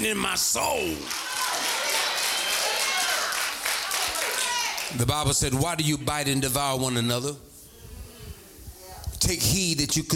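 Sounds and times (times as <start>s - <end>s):
speech: 0.0s - 1.5s, 4.9s - 7.5s, 9.2s - 10.1s
hands clapping: 1.0s - 5.0s.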